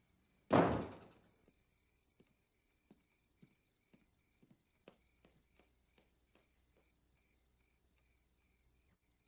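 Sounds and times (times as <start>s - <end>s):
door slamming shut: 0.5s - 1.2s
soft evenly spaced footsteps: 1.4s - 8.2s.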